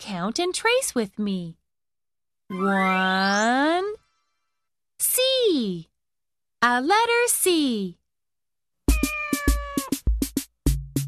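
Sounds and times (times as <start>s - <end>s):
speech: 0.1s - 1.6s, 2.5s - 4.0s, 5.0s - 5.9s, 6.6s - 8.0s
cat meowing: 8.9s - 10.0s.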